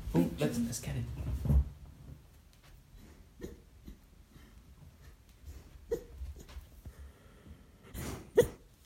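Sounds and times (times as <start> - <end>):
speech: 0.1 - 1.6
dog whimpering in its sleep while dreaming: 5.9 - 6.6.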